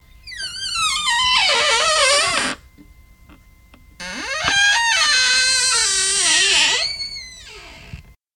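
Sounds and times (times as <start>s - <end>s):
creaky door: 0.2s - 2.6s, 4.0s - 8.1s.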